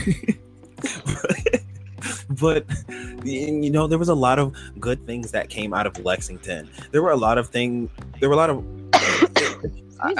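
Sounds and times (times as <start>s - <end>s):
speech: 0.0s - 0.4s, 2.4s - 10.1s
laughter: 0.0s - 3.2s
voiced speech-like sounds: 2.1s - 8.6s
loud harsh cough: 9.0s - 9.6s.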